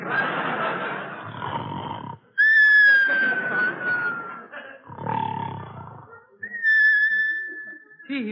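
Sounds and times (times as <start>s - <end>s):
laughter: 0.0s - 1.5s, 2.6s - 8.2s
rough rasping snore-like breath: 1.2s - 2.3s, 4.9s - 6.1s
clear cartoonish whistles: 2.4s - 4.4s, 6.4s - 8.0s.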